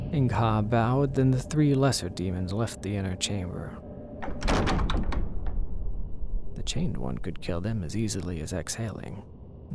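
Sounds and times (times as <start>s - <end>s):
speech: 0.1s - 3.8s, 6.6s - 9.7s
heavy doors closing with a deep rumbling scrape: 4.2s - 5.6s.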